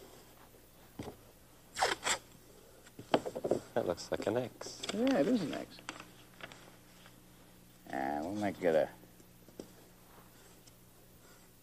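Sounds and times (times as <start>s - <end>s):
masking tape ripped off the roll: 1.7s - 2.3s
speech: 3.8s - 5.9s, 8.4s - 9.0s.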